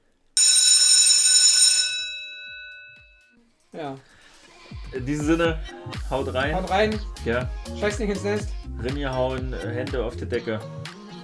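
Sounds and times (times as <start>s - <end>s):
loud electric school bell ringing: 0.4s - 3.3s
speech: 3.8s - 11.0s.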